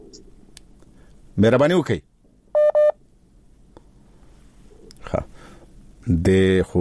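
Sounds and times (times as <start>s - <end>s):
speech: 1.4s - 2.1s, 6.1s - 6.8s
telephone dialing tones as a radio phone-in call is connected: 2.6s - 2.9s.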